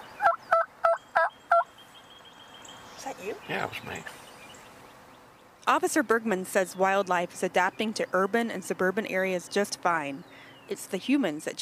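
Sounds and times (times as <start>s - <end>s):
wild turkeys gobbling at a suburban bird feeder: 0.2s - 1.8s
speech: 3.2s - 4.2s, 5.6s - 11.6s.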